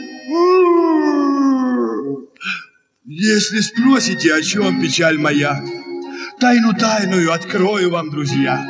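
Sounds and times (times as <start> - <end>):
short breathy yelp: 0.0 - 2.8
speech: 0.3 - 0.5, 3.2 - 5.8, 6.4 - 8.6
human voice imitating a dog's howl: 0.3 - 2.3.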